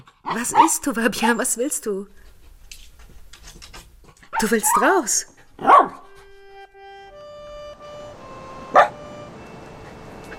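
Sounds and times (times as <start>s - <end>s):
dog barking: 0.0s - 0.8s, 4.3s - 5.0s, 5.6s - 6.2s, 8.7s - 9.0s
speech: 0.3s - 2.3s, 4.4s - 6.0s
steady sustained musical tone: 6.0s - 10.3s.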